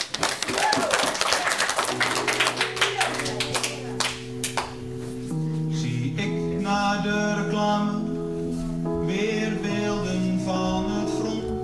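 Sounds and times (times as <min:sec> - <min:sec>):
crowd applauding with dense steady clapping: 0:00.0 - 0:04.8
sustained low musical tone: 0:03.3 - 0:11.6.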